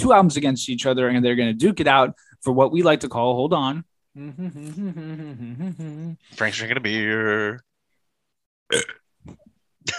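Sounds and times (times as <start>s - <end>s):
speech: 0.0s - 7.7s, 8.7s - 9.9s
loud burp: 8.7s - 9.1s.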